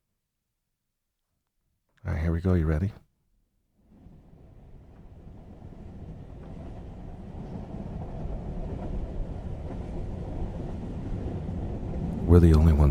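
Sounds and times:
speech: 0:02.0 - 0:03.0, 0:12.4 - 0:12.8
train rolling along the tracks with rhythmic clatter: 0:03.9 - 0:12.8.

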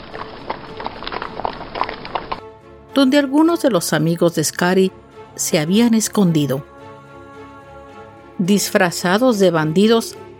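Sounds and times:
horse hooves clip-clopping as horses are ridden along a long trail in Death Valley: 0:00.0 - 0:02.4
speech: 0:03.0 - 0:06.7, 0:08.4 - 0:10.2.

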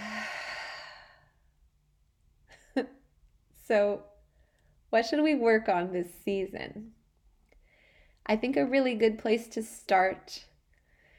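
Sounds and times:
deep slow exhale during a guided breathing exercise: 0:00.0 - 0:01.4
speech: 0:02.8 - 0:03.0, 0:03.7 - 0:04.1, 0:04.9 - 0:07.0, 0:08.3 - 0:10.5.

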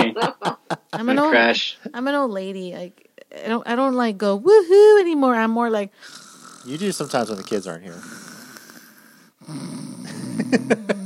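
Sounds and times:
laughter: 0:00.0 - 0:01.5, 0:10.1 - 0:11.0
speech: 0:00.1 - 0:08.2, 0:10.4 - 0:11.0
person imitating snoring: 0:06.0 - 0:11.0.

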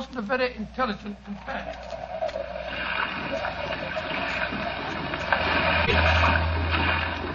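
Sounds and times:
splashing surges of rough sea around a small boat: 0:00.0 - 0:07.3
speech: 0:00.1 - 0:02.5, 0:03.2 - 0:03.9
rough sea water churning around a small boat: 0:01.0 - 0:07.3
deep rumble: 0:01.3 - 0:07.3.

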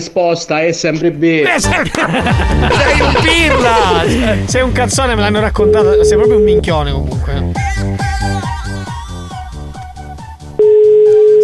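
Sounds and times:
speech: 0:00.0 - 0:07.8
laughter: 0:01.5 - 0:05.3
telephone ringback tone of unanswered call: 0:10.6 - 0:11.4.

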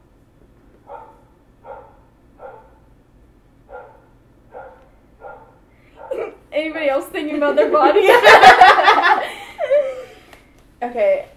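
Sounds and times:
low hum: 0:00.0 - 0:11.3
dog barking: 0:00.8 - 0:02.9, 0:03.7 - 0:06.3
speech: 0:06.6 - 0:08.7, 0:10.8 - 0:11.3
laughter: 0:07.6 - 0:10.2.

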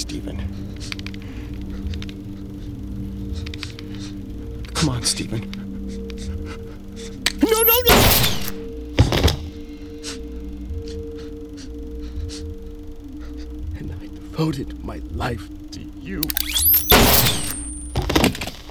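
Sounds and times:
low steady hum: 0:00.0 - 0:18.4
speech: 0:00.1 - 0:01.0, 0:04.8 - 0:05.6, 0:14.4 - 0:16.5
analog-made gunshot sound effects: 0:07.4 - 0:08.6, 0:16.2 - 0:17.8.

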